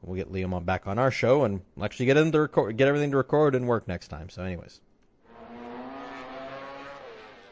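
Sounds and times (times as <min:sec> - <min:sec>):
speech: 0:00.0 - 0:04.9
racing motorcycle engine screaming at high revs: 0:05.3 - 0:07.4.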